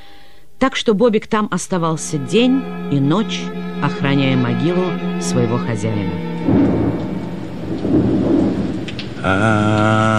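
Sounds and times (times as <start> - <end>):
speech: 0.6 - 7.1, 9.2 - 10.1
sustained tonal sound: 1.6 - 9.6
low rolling thunder: 6.1 - 10.1
steady wash of rain: 6.2 - 10.1
very strong wind in a thunderstorm: 6.4 - 9.4.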